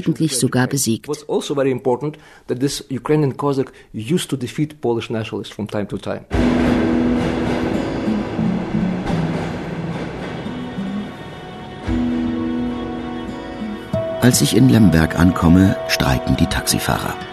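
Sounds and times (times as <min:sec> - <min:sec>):
speech: 0:00.0 - 0:06.9, 0:14.2 - 0:17.3
Soviet-era tram rumbling into the city centre of Lviv: 0:06.3 - 0:17.2
tram rail clatter: 0:06.4 - 0:13.1.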